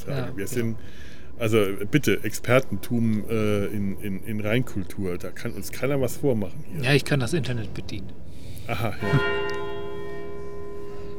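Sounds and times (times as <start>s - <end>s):
speech: 0.0s - 9.6s
church bell ringing with a sustained resonant tone: 8.9s - 11.1s.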